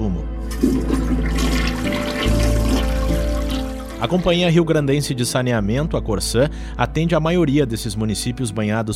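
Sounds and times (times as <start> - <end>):
toilet flushing: 0.4 - 4.4
speech: 4.0 - 8.9.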